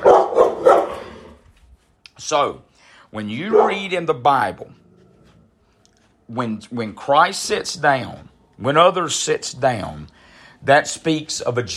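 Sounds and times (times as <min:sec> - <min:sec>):
dogs barking: 0:00.0 - 0:01.4, 0:03.3 - 0:04.0
speech: 0:02.2 - 0:04.8, 0:06.3 - 0:11.7.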